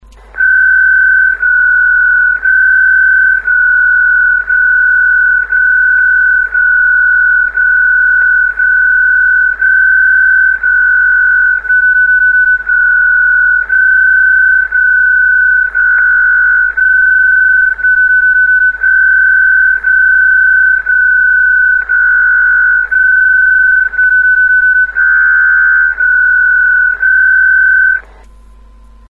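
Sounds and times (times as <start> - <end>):
digital mode radio signal: 0.0 - 29.0.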